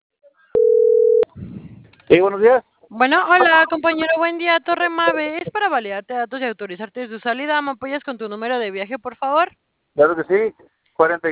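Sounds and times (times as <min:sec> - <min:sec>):
telephone line tone while dialing a call to operators: 0:00.6 - 0:01.3
speech: 0:02.1 - 0:11.2.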